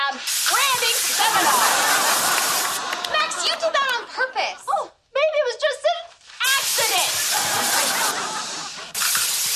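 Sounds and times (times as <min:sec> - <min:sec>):
water spraying onto a light cord: 0:00.2 - 0:02.9, 0:06.4 - 0:09.5
laughter: 0:00.9 - 0:04.7, 0:07.2 - 0:08.9.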